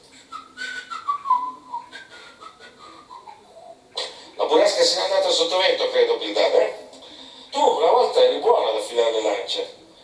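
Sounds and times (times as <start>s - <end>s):
person whistling a wavering tune: 0.3s - 3.3s
speech: 4.5s - 6.8s, 7.6s - 9.8s.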